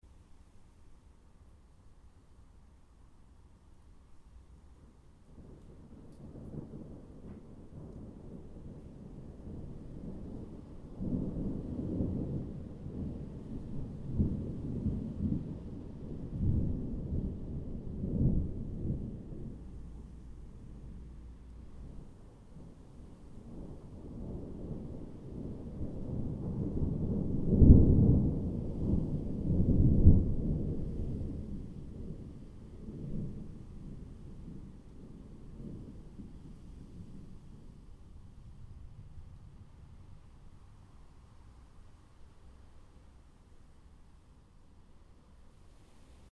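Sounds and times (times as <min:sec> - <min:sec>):
background thunder: 0:05.3 - 0:40.9.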